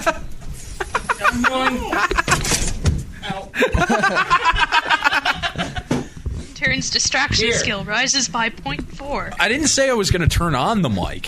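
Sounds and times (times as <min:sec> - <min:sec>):
excited voices chattering and chuckling: 0:00.0 - 0:10.1
speech: 0:01.4 - 0:02.1, 0:03.6 - 0:04.7, 0:06.8 - 0:11.2
door pulled open with a rattle and a dull thump: 0:02.2 - 0:03.1.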